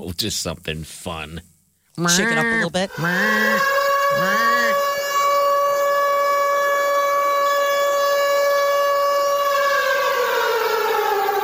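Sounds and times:
speech: 0.0 - 5.0
outdoor civil defense warning siren test wailing: 2.9 - 11.4.

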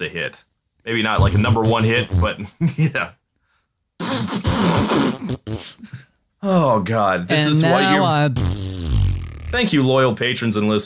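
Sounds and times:
speech: 0.0 - 3.2, 4.0 - 8.8, 9.5 - 10.8
loud fart noise: 1.2 - 2.4, 4.0 - 5.9, 8.2 - 9.8.

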